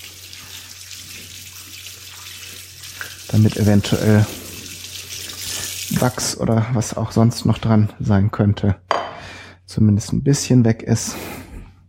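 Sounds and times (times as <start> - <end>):
hot tap water running into a sink rinsing an organic lemon: 0.0 - 6.3
speech: 3.3 - 4.4, 6.0 - 8.9, 9.7 - 11.4.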